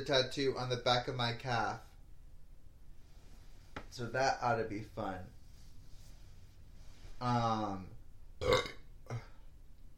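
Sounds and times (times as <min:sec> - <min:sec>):
speech: 0:00.0 - 0:01.9, 0:03.9 - 0:05.4, 0:07.2 - 0:09.3
burps after drinking soda: 0:08.4 - 0:09.4.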